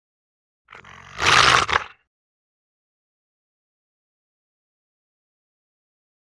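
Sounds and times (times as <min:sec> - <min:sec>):
Rottweiler giving a harsh gruff vocalization: 0:00.8 - 0:01.9.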